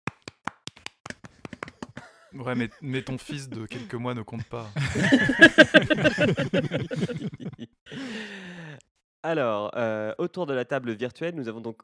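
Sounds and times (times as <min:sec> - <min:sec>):
hand claps: 0:00.0 - 0:02.2
laughter: 0:01.8 - 0:08.2
speech: 0:02.3 - 0:08.4, 0:09.2 - 0:11.8.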